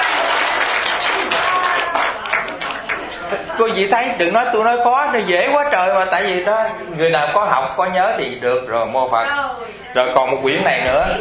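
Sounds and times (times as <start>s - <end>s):
audience applause: 0.0s - 3.3s
speech: 3.6s - 11.2s.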